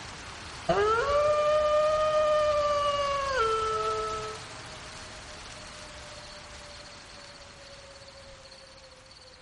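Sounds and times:
wolf howling: 0.7s - 4.5s.

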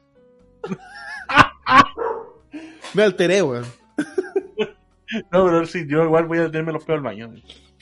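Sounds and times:
laughter: 0.6s - 2.0s, 4.0s - 5.2s
speech: 0.7s - 1.0s, 3.0s - 3.8s, 5.3s - 7.6s
dog barking loudly with sharp yips and whiny tones: 1.9s - 2.4s.

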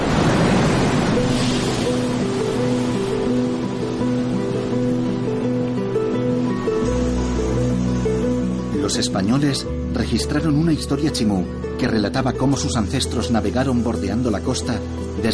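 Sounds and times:
Pacific Ocean surf along the coast: 0.0s - 15.3s
sustained musical drone: 1.1s - 15.3s
speech: 8.9s - 15.3s.

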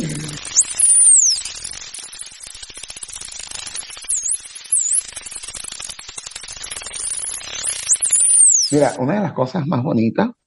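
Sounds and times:
dolphin signature whistles, likely a mother's call: 0.0s - 1.7s, 3.8s - 5.1s, 7.0s - 8.9s
steady crackling hiss of underwater noise: 0.0s - 9.0s
speech: 8.7s - 10.4s.

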